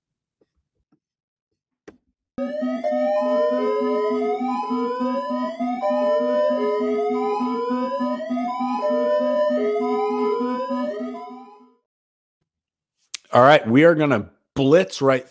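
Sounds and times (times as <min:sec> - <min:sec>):
loud electronic siren wailing: 0:02.4 - 0:11.8
speech: 0:13.4 - 0:15.2.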